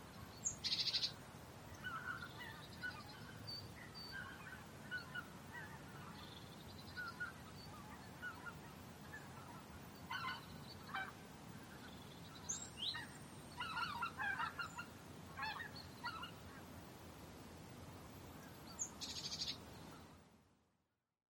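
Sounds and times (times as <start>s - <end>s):
steady low background noise: 0.0s - 21.2s
Tundra bean geese honking: 4.1s - 6.2s, 7.0s - 11.2s, 12.9s - 16.6s.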